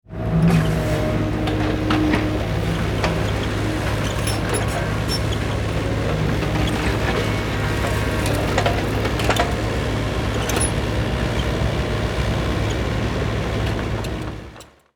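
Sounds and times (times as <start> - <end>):
excavator construction vehicle working: 0.1 - 14.9.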